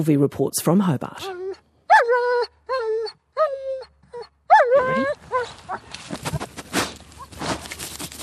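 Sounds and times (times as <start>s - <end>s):
speech: 0.0s - 2.2s
2-year-old German Shepherd sniffer dog whining yelps: 1.2s - 5.9s
German Shepherd sniffer dog snuffling and sniffing the ground on alpine slopes: 4.9s - 8.2s.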